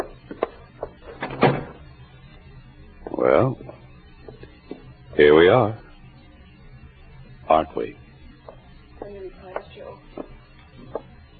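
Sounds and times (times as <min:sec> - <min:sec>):
door closing with knocks latch clicks and a thump: 0:01.1 - 0:01.8
speech: 0:03.2 - 0:03.6, 0:05.2 - 0:05.8.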